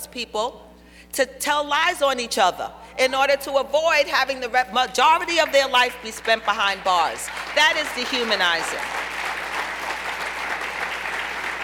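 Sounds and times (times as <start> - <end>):
speech: 0.1 - 9.1
audience clapping at a talk on criminal justice: 6.2 - 11.6.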